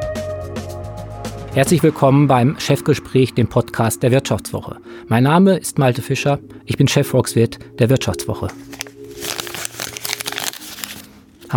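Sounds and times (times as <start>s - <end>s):
speech: 1.5s - 8.7s
paper 50-euro banknotes being crinkled and rustled: 8.4s - 11.5s.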